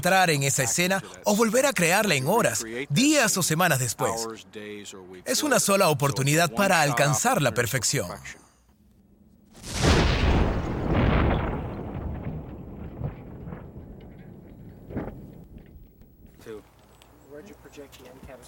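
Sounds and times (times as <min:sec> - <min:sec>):
speech: 0:00.0 - 0:08.5, 0:17.7 - 0:18.4
pipe bomb explosion: 0:09.5 - 0:16.2.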